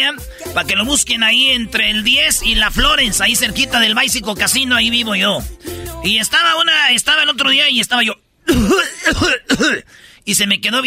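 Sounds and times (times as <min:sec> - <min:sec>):
speech: 0:00.0 - 0:10.8
harsh throaty coughing: 0:08.5 - 0:10.0.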